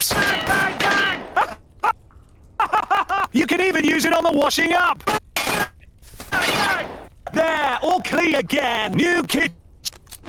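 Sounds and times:
gunshots from a kitchen gun used to clean a greasy hob: 0.0 - 1.5, 6.3 - 7.1
laughter: 2.6 - 3.4
speech: 3.6 - 5.2, 7.4 - 9.6.

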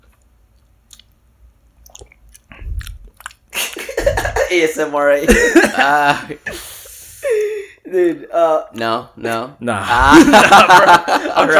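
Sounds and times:
chewing and swishing whiskey in mouth: 0.0 - 3.9
speech: 4.5 - 6.7, 7.9 - 11.5
laughter: 5.2 - 6.5, 9.8 - 11.5.

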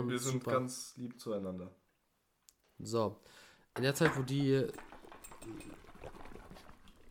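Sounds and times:
speech: 0.0 - 1.8, 2.8 - 6.2
liquid sloshing and fizzing from a shaken bottle of carbonated drink: 4.7 - 7.0.

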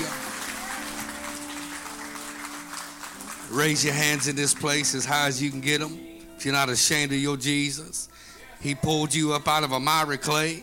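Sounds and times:
crowd clapping hands: 0.0 - 5.4
speech: 3.5 - 10.6.

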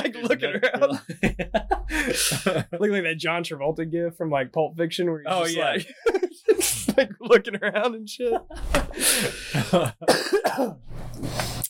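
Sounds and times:
laughter: 0.0 - 3.0, 5.3 - 10.1
speech: 0.0 - 11.6
person coughing: 9.2 - 10.8.

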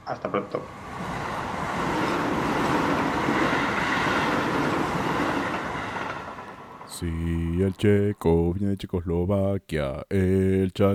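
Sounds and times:
train rumbling as it pulls out: 0.0 - 8.6
speech: 0.1 - 1.1, 7.0 - 10.9
faint rhythmic rail clatter: 0.1 - 7.3.

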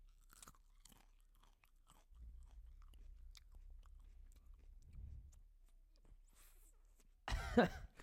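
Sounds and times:
crunching and chewing food close to a microphone: 0.0 - 7.2
person coughing: 7.3 - 8.0.

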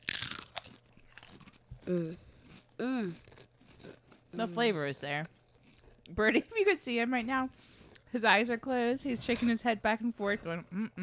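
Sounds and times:
chewing crackles: 0.0 - 6.2
potato chips crunching: 0.0 - 6.2
speech: 1.9 - 2.2, 2.8 - 3.3, 4.4 - 5.3, 6.1 - 11.0
person murmuring while eating: 2.8 - 3.2.

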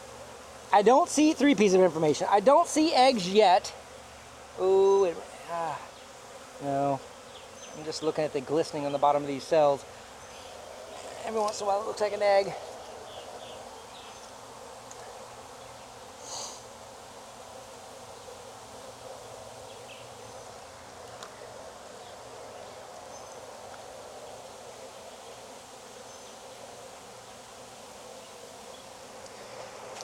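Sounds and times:
many agitated bees buzzing around an open hive: 0.0 - 30.0
speech: 0.7 - 3.8, 4.6 - 5.9, 6.6 - 7.1, 7.8 - 10.0, 11.2 - 12.7.

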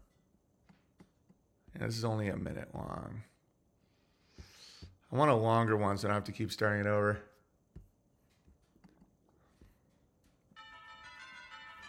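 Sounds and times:
speech: 1.8 - 3.3, 5.1 - 7.3
church bells ringing a peal: 10.6 - 11.8.

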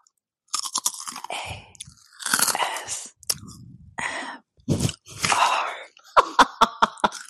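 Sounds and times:
crunchy snack being chewed in an ASMR session: 0.5 - 3.6, 7.0 - 7.2
laughter: 6.1 - 7.2.

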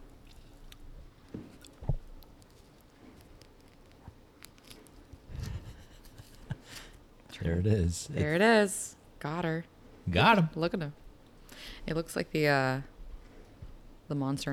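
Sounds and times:
cutie mandarin orange being peeled by hand: 0.0 - 7.0
mandarin orange peel tearing and crackling: 1.5 - 5.3
speech: 7.4 - 11.0, 11.9 - 12.9, 14.1 - 14.5.

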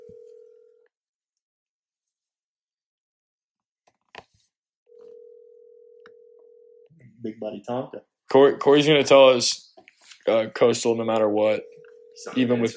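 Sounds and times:
electronic phone call ringing tone: 0.0 - 0.9, 4.9 - 6.9, 11.4 - 12.7
speech: 7.2 - 9.7, 10.3 - 12.7.

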